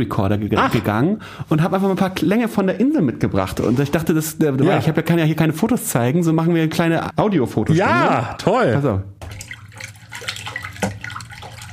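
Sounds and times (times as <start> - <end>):
speech: 0.0 - 9.4
water splashing and trickling: 9.2 - 11.7.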